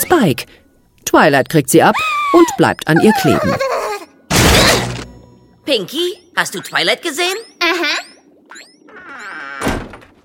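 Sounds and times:
speech: 0.2 - 3.8, 5.7 - 9.7
cartoon door shoved open with a creaking sweep: 8.5 - 10.2
loud heavy thump of a cartoon door hitting: 9.6 - 10.2.

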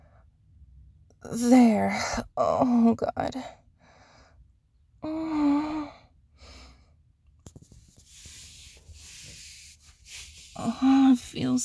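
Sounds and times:
speech: 1.2 - 3.6, 10.6 - 11.6
breathing: 3.7 - 4.5, 5.3 - 7.0, 8.0 - 10.6
body rubbing against fabric: 7.7 - 11.6.

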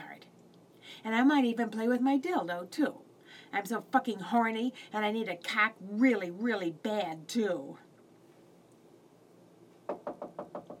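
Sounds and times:
speech: 1.0 - 7.8
knocking on a door: 9.9 - 10.7.

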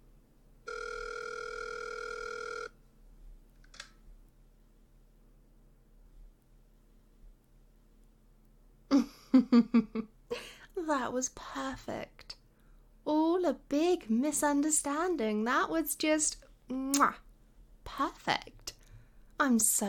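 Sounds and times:
phone dial tone: 0.7 - 2.8
speech: 9.4 - 10.2, 10.9 - 12.3, 13.0 - 17.2, 17.9 - 18.6, 19.4 - 19.8.

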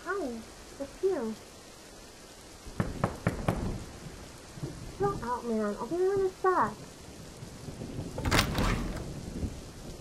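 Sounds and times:
heavy rain: 0.0 - 9.9
speech: 0.8 - 1.5, 5.1 - 6.9
thunder: 7.7 - 9.9.

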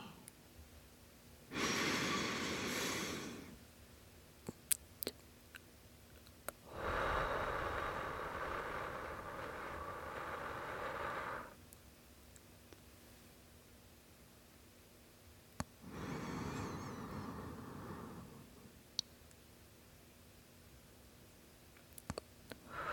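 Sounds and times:
slow deep breathing during a guided relaxation: 1.5 - 3.6, 6.7 - 11.6, 15.8 - 18.7, 22.6 - 22.9.

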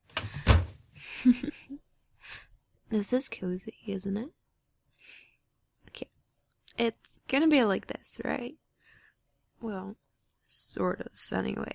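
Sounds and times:
door shutting thump: 0.1 - 0.8
speech: 1.2 - 1.6, 2.9 - 4.4, 6.8 - 8.6, 9.6 - 11.7.

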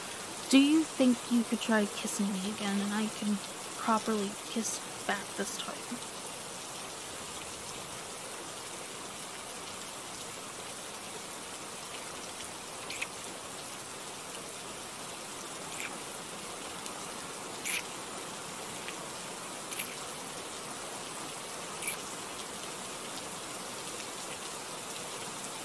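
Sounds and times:
steady rain falling: 0.0 - 25.6
speech: 0.5 - 6.2.

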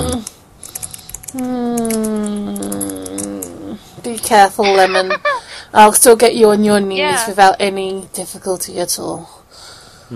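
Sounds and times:
typing on a computer keyboard: 0.2 - 4.3
speech: 1.3 - 1.6, 4.2 - 9.4
laughter: 4.6 - 5.5.

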